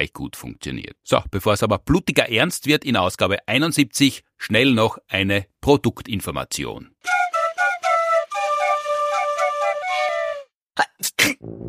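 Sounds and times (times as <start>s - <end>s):
speech: 0.0s - 7.3s, 10.8s - 11.6s
bright melodic tune: 7.1s - 10.4s.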